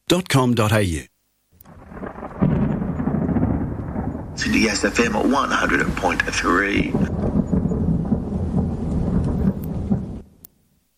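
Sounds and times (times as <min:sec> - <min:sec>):
speech: 0:00.1 - 0:01.1, 0:04.4 - 0:07.4
steady rain: 0:01.5 - 0:10.9
thunder rumbling: 0:01.6 - 0:10.5
deep rolling thunder boom: 0:01.7 - 0:10.4.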